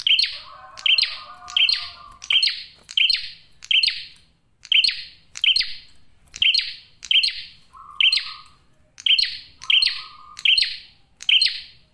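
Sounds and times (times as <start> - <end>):
male prinia giving clipped buzzy chirps: 0.0 - 11.9.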